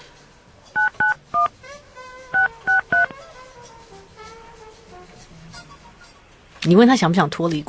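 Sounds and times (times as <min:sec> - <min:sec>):
telephone keypad dialing tones: 0:00.8 - 0:01.5, 0:02.4 - 0:03.1
speech: 0:06.7 - 0:07.6.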